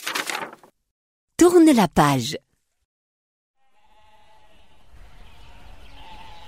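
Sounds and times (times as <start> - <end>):
speech: 1.4 - 2.5
flock of sheep bleating on a mountain: 3.6 - 6.4.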